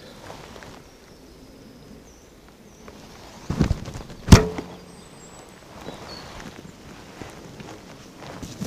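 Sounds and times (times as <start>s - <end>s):
faint birdsong: 0.0s - 8.6s
arrow striking a foam 3D animal target: 4.3s - 4.9s.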